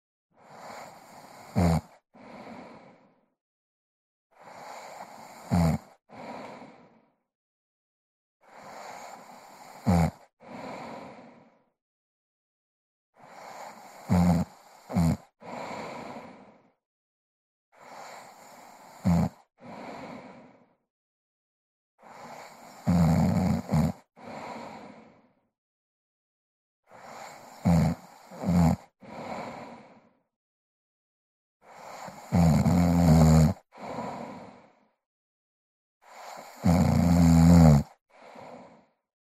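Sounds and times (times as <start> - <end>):
woman snoring: 0.4 - 3.0, 4.4 - 6.8, 8.4 - 11.4, 13.2 - 16.5, 17.8 - 20.5, 22.0 - 25.1, 26.9 - 30.0, 31.6 - 34.7, 36.0 - 38.9.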